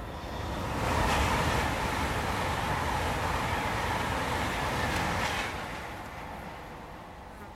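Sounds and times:
train rumbling into a railway station: 0.0s - 7.3s.

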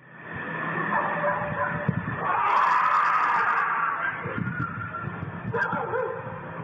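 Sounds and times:
dogs barking: 0.8s - 6.6s
high wailing cry: 2.1s - 5.7s.

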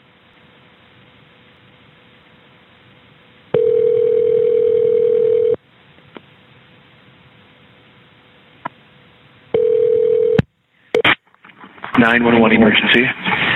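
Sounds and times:
dial tone on a recorded emergency phone call: 3.5s - 5.6s, 9.5s - 10.4s
phone line hiss: 3.5s - 5.6s, 9.5s - 11.2s
speech: 12.0s - 13.4s.

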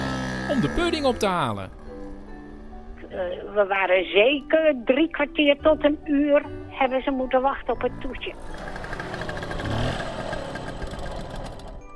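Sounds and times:
scooter engine running while ridden near Amsterdam Netherlands: 0.0s - 3.0s, 7.7s - 11.9s
speech: 0.5s - 1.8s, 3.1s - 9.8s.

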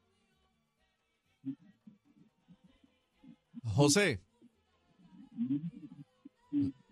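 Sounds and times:
garbled distorted voice on a bad phone line: 3.7s - 4.2s
speech: 3.8s - 4.3s.

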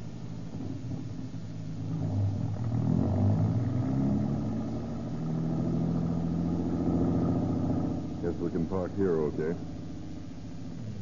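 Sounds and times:
car engine rumbling as the car drives off up the street: 0.0s - 11.0s
speech: 8.4s - 9.7s.

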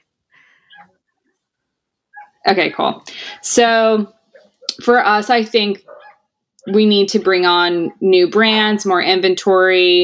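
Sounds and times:
faint dogs barking in the background: 2.1s - 2.5s, 4.2s - 4.9s, 5.8s - 7.0s
speech: 2.4s - 4.2s, 4.8s - 5.9s, 6.6s - 10.0s.

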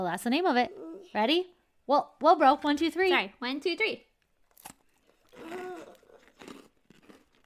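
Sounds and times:
speech: 0.0s - 4.1s
person biting and chewing a honeycomb chocolate bar: 4.4s - 7.4s.

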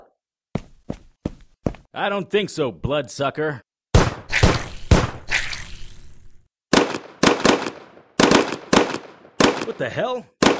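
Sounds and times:
speech: 2.0s - 3.6s, 9.7s - 10.4s
gunfire during a shootout: 4.0s - 5.3s, 6.7s - 9.8s, 10.4s - 10.5s.

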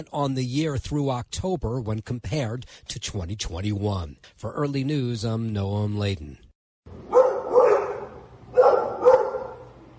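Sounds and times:
speech: 0.0s - 6.4s
low hum: 6.9s - 9.9s
dog barking: 7.1s - 9.7s.

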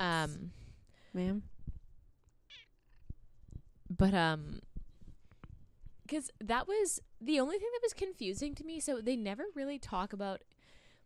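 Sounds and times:
speech: 0.2s - 1.5s, 3.9s - 4.7s, 6.1s - 10.6s
female cat meowing in the morning: 2.5s - 3.1s.

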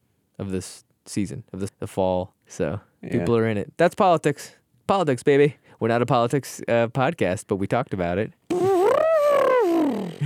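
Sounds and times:
speech: 0.4s - 8.4s
voice imitating an elephant trumpeting: 8.5s - 10.2s.

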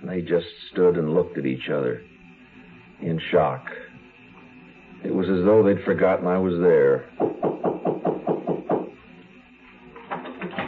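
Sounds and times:
speech: 0.2s - 2.2s, 3.0s - 3.8s, 5.0s - 7.4s
knocking on a door: 7.2s - 9.0s.

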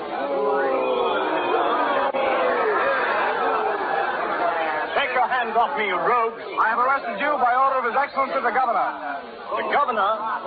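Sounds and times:
dense crowd shouting in the street: 0.0s - 6.9s
speech: 5.5s - 10.4s.

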